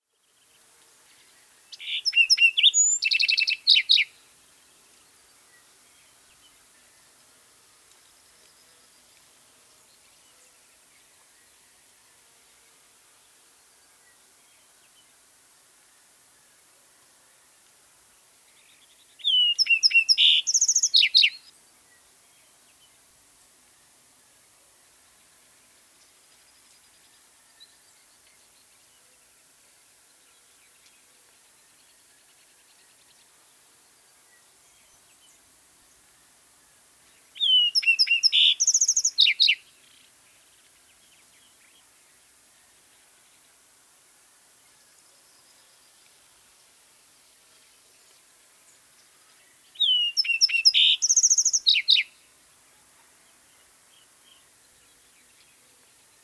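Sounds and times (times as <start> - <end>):
Lark Sparrow Chondestes grammacus singing: 1.7 - 4.2, 18.6 - 21.4, 37.3 - 39.7, 49.5 - 52.2.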